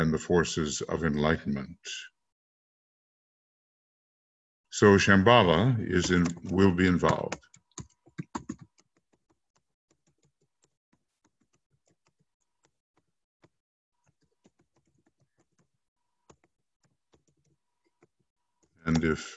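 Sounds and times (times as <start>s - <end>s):
speech: 0.0s - 2.1s, 4.8s - 7.5s, 18.9s - 19.3s
typing on a computer keyboard: 6.0s - 12.7s, 14.0s - 18.2s.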